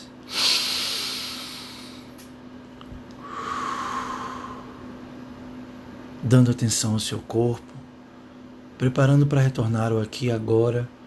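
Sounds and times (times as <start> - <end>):
deep breathing close to the microphone: 0.3 - 2.2, 3.2 - 5.0
speech: 6.2 - 7.8, 8.8 - 11.0.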